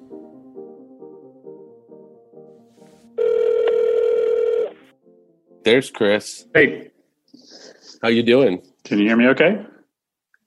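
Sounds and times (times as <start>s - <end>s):
telephone call being placed, short repeated dialing tones: 3.2s - 4.8s
speech: 5.6s - 6.9s, 8.0s - 9.7s.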